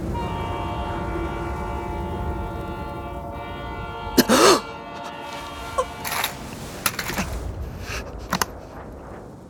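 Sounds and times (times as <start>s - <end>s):
steam train whistle: 0.1s - 7.2s
sharp bursts and clatters: 4.2s - 9.1s.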